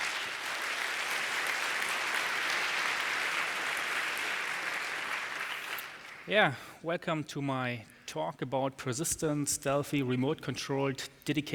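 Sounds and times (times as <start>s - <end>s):
sizable audience applauding a speaker: 0.0s - 6.3s
speech: 6.3s - 11.5s.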